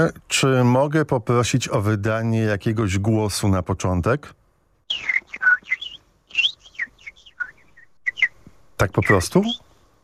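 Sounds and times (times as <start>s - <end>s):
speech: 0.0s - 5.2s, 8.8s - 9.6s
man whistling an imitation of birdsong with chirps and trills: 4.9s - 8.4s.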